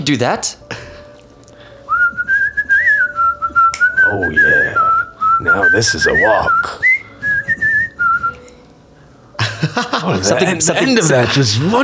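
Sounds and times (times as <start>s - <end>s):
speech: 0.0s - 0.7s, 4.1s - 6.8s, 9.6s - 11.8s
person whistling an upbeat jaunty tune: 1.8s - 8.6s
laughter: 9.4s - 11.7s.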